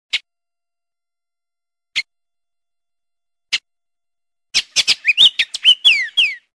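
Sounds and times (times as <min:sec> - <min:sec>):
oriole calling with clicks chattering notes and whistled slurs: 0:04.6 - 0:06.5.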